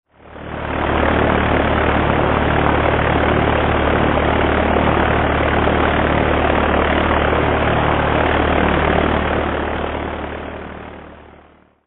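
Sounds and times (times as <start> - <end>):
sport aircraft: 0.1 - 11.8.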